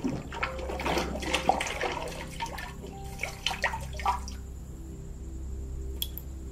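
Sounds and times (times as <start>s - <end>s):
thick resin stirred in a jar: 0.0s - 4.2s
thick resin dripping back into a jar: 0.0s - 4.4s, 6.0s - 6.3s.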